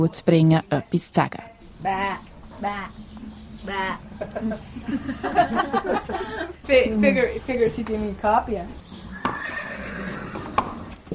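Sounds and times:
speech: 0:00.0 - 0:08.8
horse hoof knocks: 0:01.3 - 0:11.1
laughter: 0:04.0 - 0:07.4
horse whinnying as it is led out of the stable: 0:09.0 - 0:11.0.

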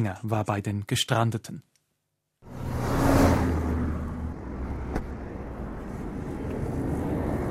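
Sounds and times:
speech: 0:00.0 - 0:01.7
cars and trucks rushing past on a busy highway: 0:02.4 - 0:07.5.

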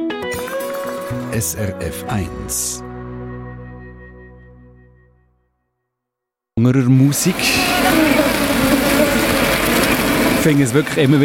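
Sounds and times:
speech: 0:01.3 - 0:02.9, 0:06.6 - 0:08.1, 0:10.4 - 0:11.2
swarm of thousands of honeybees buzzing: 0:07.2 - 0:10.6.

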